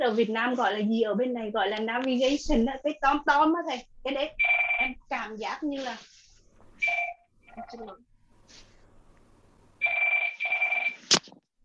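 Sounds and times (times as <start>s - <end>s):
speech: 0.0s - 6.2s, 6.8s - 8.7s
telephone ringing with high steady electronic tones: 4.4s - 5.0s, 6.8s - 7.8s, 9.8s - 11.1s.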